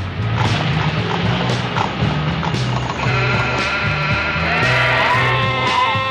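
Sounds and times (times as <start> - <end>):
busy farmyard clatter: 0.3 - 6.0
sheep bleating in a dense chorus: 2.9 - 6.0.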